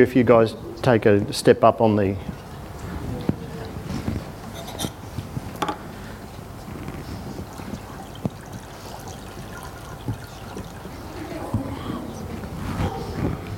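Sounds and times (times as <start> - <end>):
speech: 0.0 - 2.4
faint murmur of voices: 0.0 - 13.5
water for a baptism sloshing and trickling: 2.0 - 12.7.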